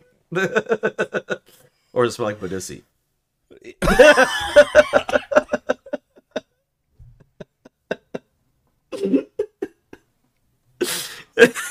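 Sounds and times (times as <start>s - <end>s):
speech: 0.3s - 1.3s, 2.0s - 2.9s, 3.9s - 5.1s
laughter: 3.8s - 6.5s, 7.1s - 8.3s
person choking and coughing: 8.9s - 9.5s.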